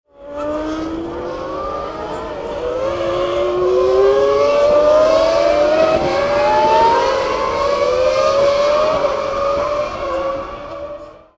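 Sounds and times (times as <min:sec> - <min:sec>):
Formula One racing car engine: 0:00.1 - 0:11.3.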